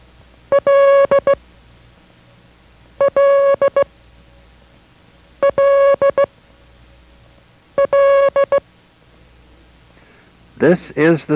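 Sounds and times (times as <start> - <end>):
International Morse code letter L beeping tone: 0.5 - 1.4, 3.0 - 3.9, 5.4 - 6.3, 7.8 - 8.6
speech: 10.6 - 11.3.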